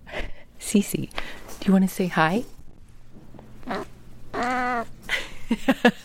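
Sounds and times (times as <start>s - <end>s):
speech: 0.7s - 2.6s, 5.5s - 6.0s
female cat about 20 years old moaning yowl: 3.6s - 4.9s.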